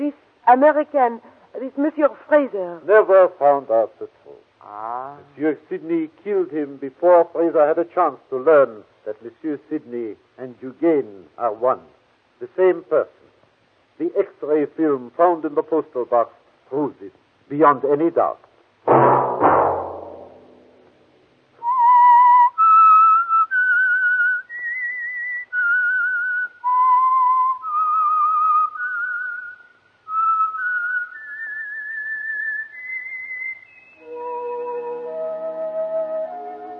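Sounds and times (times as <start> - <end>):
speech: 0.1 - 13.3, 14.0 - 19.2
whistled radio program theme melody: 21.6 - 36.7.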